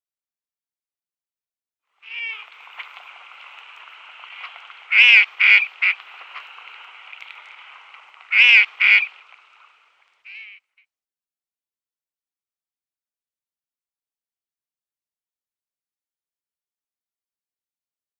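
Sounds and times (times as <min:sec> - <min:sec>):
female shoveler duck calling: 0:02.0 - 0:02.5, 0:04.9 - 0:06.0, 0:08.3 - 0:09.1, 0:10.3 - 0:10.6.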